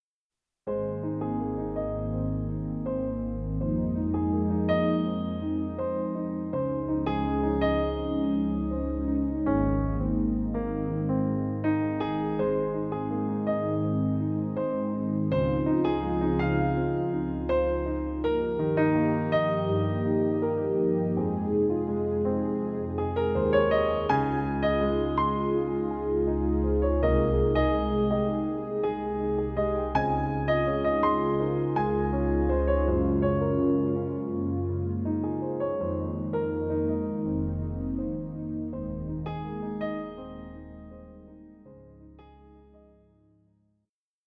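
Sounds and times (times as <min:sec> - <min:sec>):
Yamaha P-255 digital piano: 0:00.7 - 0:43.3.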